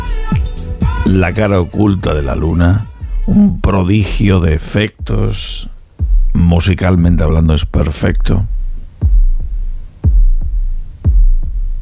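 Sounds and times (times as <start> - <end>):
speech: 1.1 - 5.7, 6.3 - 8.6
deep throbbing heartbeat sound effect in music: 5.0 - 6.4, 8.5 - 11.8.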